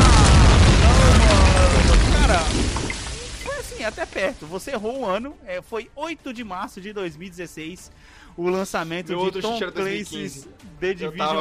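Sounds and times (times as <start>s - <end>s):
small bomb explosion with heavy boom, rumble and crackle: 0.0s - 3.8s
speech: 3.9s - 11.4s.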